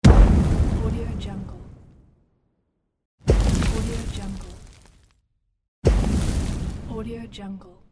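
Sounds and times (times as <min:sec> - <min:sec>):
fire explosion: 0:00.0 - 0:01.9, 0:03.2 - 0:05.1, 0:05.8 - 0:07.2.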